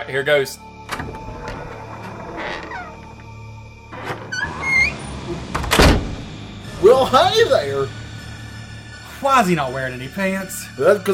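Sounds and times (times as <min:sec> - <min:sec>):
speech: 0:00.0 - 0:01.2, 0:06.8 - 0:08.0, 0:09.2 - 0:11.1
creaky old door of an abandoned shack swinging open: 0:00.8 - 0:06.3.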